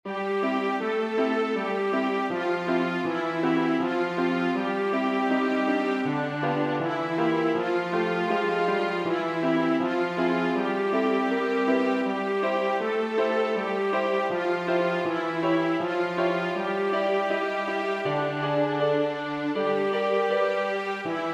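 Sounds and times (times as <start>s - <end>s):
nursery rhyme played on piano: 0.1s - 21.3s.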